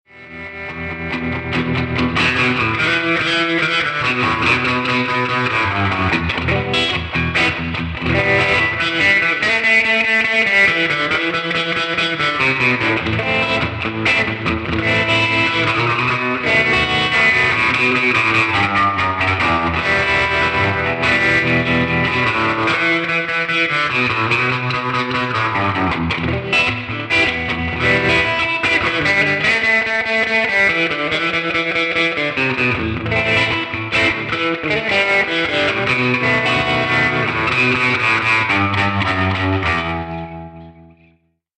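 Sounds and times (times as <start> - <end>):
surf guitar through 2x12 black panel duo amplifier recorded with ribbon microphone: 0.0 - 41.3.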